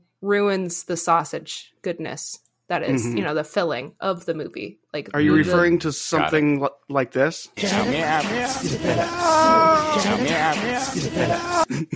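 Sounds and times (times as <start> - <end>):
speech: 0.2 - 11.9
actor in a movie imitating a cat meowing: 2.9 - 3.3, 5.2 - 5.6, 9.0 - 10.2
laughter: 2.9 - 3.3, 5.1 - 6.6, 7.6 - 11.9.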